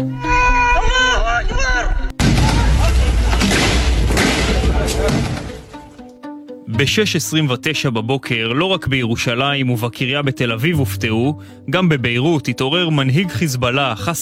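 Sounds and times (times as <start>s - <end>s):
men shouting in Arabic in strained voices: 0.1s - 3.6s
explosion blast: 2.2s - 5.9s
speech: 6.8s - 14.2s.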